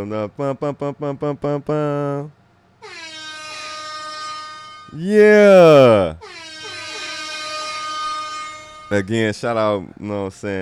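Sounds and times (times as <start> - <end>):
speech: 0.0 - 3.0, 4.9 - 6.4, 8.9 - 10.5
air horn blasts: 2.8 - 9.1.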